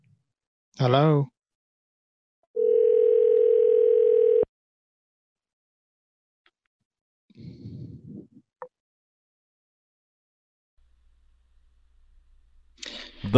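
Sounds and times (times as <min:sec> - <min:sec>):
speech: 0:00.8 - 0:01.4
unstable telephone ringing tone: 0:02.6 - 0:04.5.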